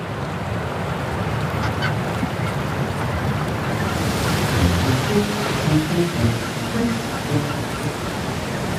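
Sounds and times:
surf washing over a rocky shore: 0.0s - 8.7s
macaroni penguin giving short harsh braying calls on a large rock: 4.8s - 8.2s.

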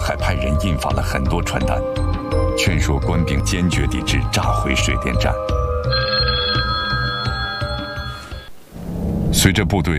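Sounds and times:
low rhythmic music: 0.0s - 8.5s
speech: 0.3s - 6.0s, 9.5s - 9.9s
telephone ringing with electronic tone: 5.2s - 8.5s.

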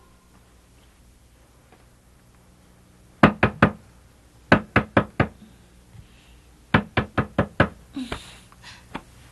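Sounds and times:
knocking on a door: 3.2s - 3.8s, 4.5s - 5.4s, 6.7s - 7.8s.

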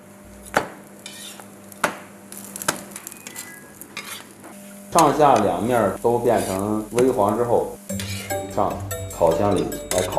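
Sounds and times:
flatbread frying in a hot pan heated to about 180 degrees: 0.0s - 8.6s
speech: 4.9s - 10.1s
utensil clinking or scraping against the pan: 9.4s - 10.1s.

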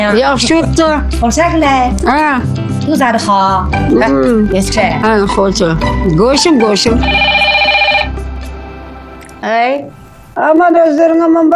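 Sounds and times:
speech: 0.0s - 7.4s, 9.4s - 11.5s
mobile phone ringing with bright electronic tone: 6.9s - 8.3s.

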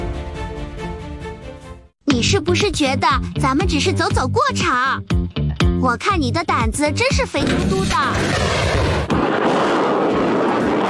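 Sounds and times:
speech: 2.1s - 8.8s
army tanks and artillery firing: 7.4s - 10.8s
sharp crack: 7.4s - 10.8s.

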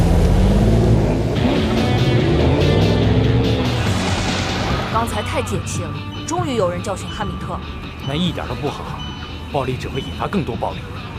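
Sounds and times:
Porsche car engine rumbling while driving: 0.0s - 8.0s
road noise from a driving Porsche car: 0.0s - 11.1s
speech: 5.4s - 11.0s.

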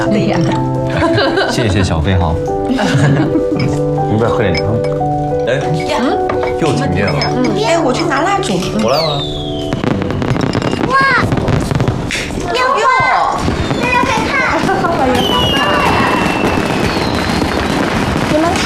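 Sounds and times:
speech: 0.0s - 0.6s, 1.2s - 9.4s
laughter: 0.9s - 4.0s
fireworks and firecrackers exploding: 8.8s - 18.6s.

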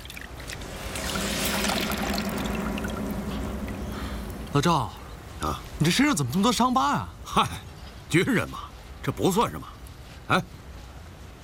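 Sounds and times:
water pouring and splashing as someone bathes on a cold day: 0.0s - 4.9s
speech: 4.6s - 9.7s, 10.3s - 10.6s.

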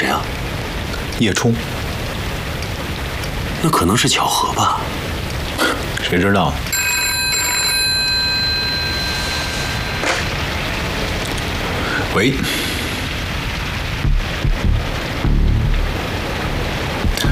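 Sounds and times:
steady hiss of noise: 0.0s - 17.3s
speech: 1.2s - 1.8s, 3.6s - 5.0s, 6.0s - 6.7s, 12.2s - 12.7s
telephone ringing with a bright bell-like tone: 6.7s - 10.6s.

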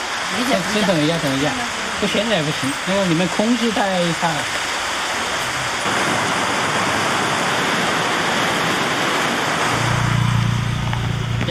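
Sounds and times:
sudden rain shower: 0.0s - 11.4s
speech: 0.3s - 4.6s
low rumble: 5.5s - 11.4s.

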